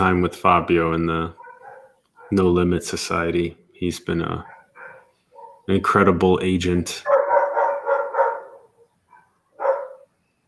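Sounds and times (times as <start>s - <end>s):
speech: 0.0s - 1.4s, 2.3s - 4.5s, 5.7s - 7.2s
dog barking: 1.4s - 2.4s, 4.4s - 5.7s, 7.0s - 10.1s.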